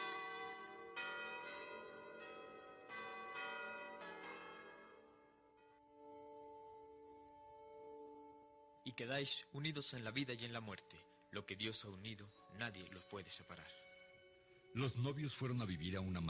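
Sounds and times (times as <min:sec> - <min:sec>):
convent church bells pealing for a wedding: 0:00.0 - 0:14.1
speech: 0:08.9 - 0:13.9, 0:14.7 - 0:16.2.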